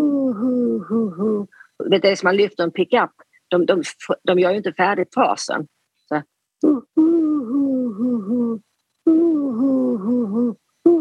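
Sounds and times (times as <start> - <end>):
human voice imitating pigeon cooing and hooting: 0.0 - 1.8, 6.6 - 10.9
speech: 1.0 - 9.3.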